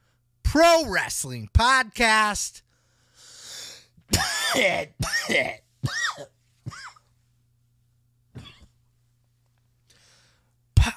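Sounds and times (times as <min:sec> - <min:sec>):
speech: 0:00.6 - 0:02.6, 0:04.1 - 0:06.3
harsh coughs: 0:04.1 - 0:07.1, 0:08.3 - 0:08.8
raspy throat clearing: 0:04.1 - 0:07.1, 0:08.3 - 0:08.8.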